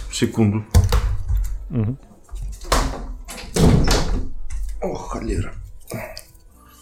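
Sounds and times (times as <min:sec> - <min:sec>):
speech: 0:00.2 - 0:00.8, 0:01.7 - 0:02.1, 0:04.8 - 0:06.1
heavy clunks and rattling thuds of a window: 0:02.4 - 0:04.8
window being pushed shut against rain: 0:02.6 - 0:04.4.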